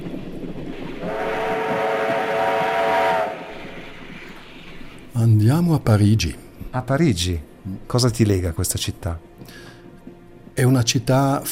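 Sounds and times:
train rumbling: 0.0 - 11.4
train whistle: 1.0 - 3.8
speech: 5.4 - 9.6, 10.6 - 11.4.

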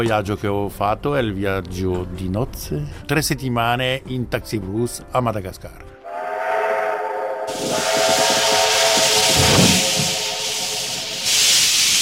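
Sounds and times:
speech: 0.0 - 5.9
antique steam train whistle: 6.1 - 12.0
rhythmic chuffing of an antique steam train: 6.1 - 12.0
rushing hiss of steam from an antique steam train: 7.5 - 12.0.

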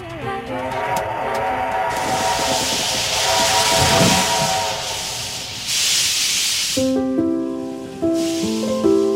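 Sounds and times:
sustained whistle-like tone from a steam locomotive: 0.3 - 6.7
steam locomotive hissing in broad bursts: 0.7 - 9.1.

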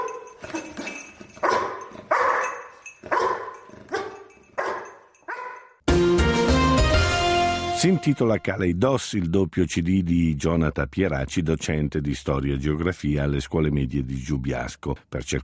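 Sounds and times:
rescue dog barking: 0.0 - 0.8, 1.4 - 5.8
music: 5.9 - 8.5
speech: 7.8 - 15.4.

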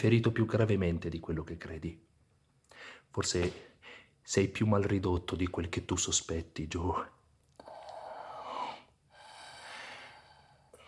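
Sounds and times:
speech: 0.0 - 2.1, 2.8 - 7.2
gasping labored breathing: 7.6 - 10.8.

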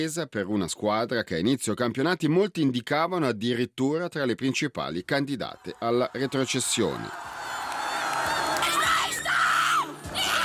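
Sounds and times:
speech: 0.0 - 7.4
football fans and players in Thun Switzerland cheering a Swiss league title: 5.6 - 10.4.

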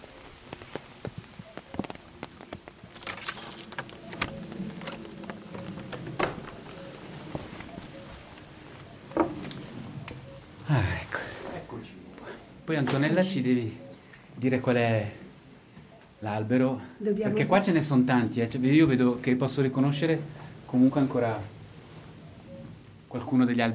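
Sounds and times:
rain patter: 0.0 - 8.8
keys jangling while unlocking the door of a restored roccolo: 2.8 - 5.0
speech: 12.7 - 13.8, 14.4 - 15.2, 16.2 - 21.6, 23.1 - 23.7.

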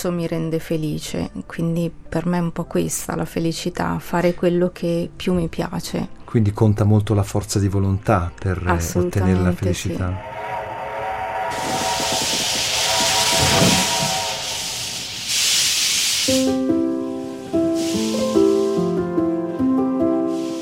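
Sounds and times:
speech: 0.0 - 10.6
steam train whistle with shifting stepped tones: 10.2 - 16.6
steam train escaping steam hissing: 10.2 - 19.3, 20.1 - 20.6.

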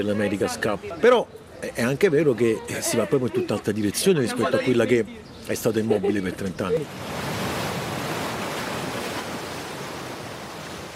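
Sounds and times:
speech: 0.0 - 7.3
sea surf waves breaking on the shore at Bagnoli in Italy: 6.8 - 10.9.

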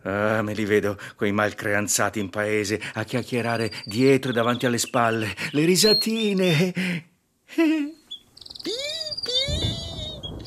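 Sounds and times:
speech: 0.0 - 7.9
canary chirping: 3.0 - 6.6, 7.9 - 10.4.

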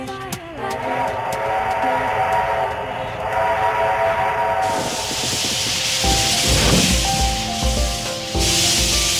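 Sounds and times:
old steam train running with hiss and rumble: 0.1 - 9.1
broad burst of steam from old steam train: 3.3 - 9.1.

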